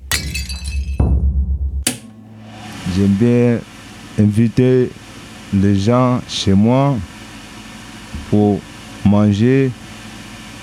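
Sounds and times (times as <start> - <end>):
broken crockery pieces clattering: 0.0 - 1.0
plate shattering during dish washing: 0.0 - 1.1
steady low hum: 1.5 - 10.6
speech: 3.0 - 7.1, 8.3 - 9.8.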